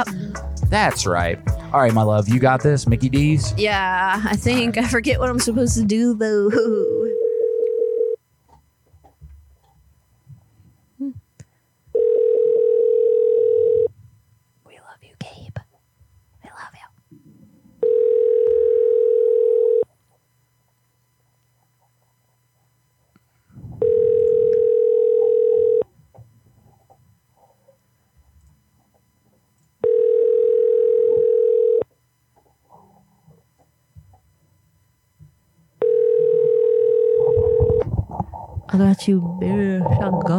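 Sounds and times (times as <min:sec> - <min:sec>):
speech: 0:00.0 - 0:07.0, 0:38.8 - 0:40.3
electronic phone ringback tones while waiting for answer: 0:07.0 - 0:08.2, 0:11.9 - 0:13.9, 0:17.8 - 0:19.9, 0:23.8 - 0:25.9, 0:29.8 - 0:31.9, 0:35.8 - 0:37.9.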